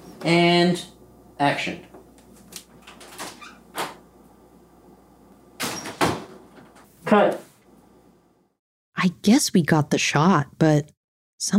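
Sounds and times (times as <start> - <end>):
speech: 0.2 - 1.9, 7.1 - 7.4, 9.0 - 11.5
door closing during filming of a scene: 2.8 - 4.0, 5.6 - 6.9.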